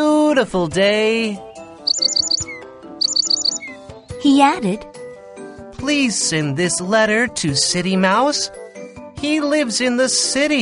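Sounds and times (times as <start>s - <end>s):
speech: 0.0s - 1.5s, 4.2s - 5.0s, 5.8s - 8.6s, 9.2s - 10.6s
parrot chirping: 1.9s - 3.8s.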